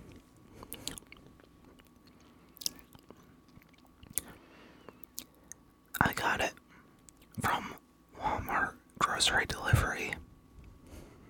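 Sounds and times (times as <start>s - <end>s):
chewing food after letting it melt: 0.0s - 5.6s
low hiss: 0.0s - 11.2s
soft wet mouth sounds: 0.6s - 4.4s.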